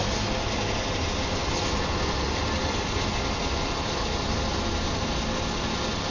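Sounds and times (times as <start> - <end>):
petrol pump dispensing fuel into a car: 0.0 - 6.0.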